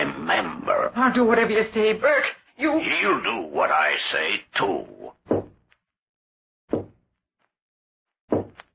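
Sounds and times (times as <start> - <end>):
speech: 0.3 - 5.1
heavy knocks on a door: 5.3 - 5.6, 6.7 - 7.0, 8.3 - 8.6.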